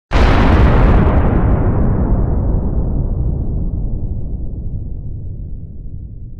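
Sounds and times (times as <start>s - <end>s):
nuke explosion: 0.1s - 6.3s.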